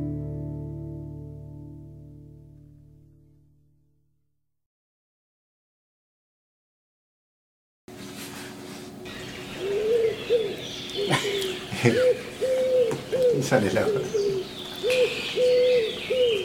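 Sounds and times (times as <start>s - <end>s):
steady hiss: 8.9s - 16.4s
eared dove (torcaza) cooing: 9.5s - 16.4s.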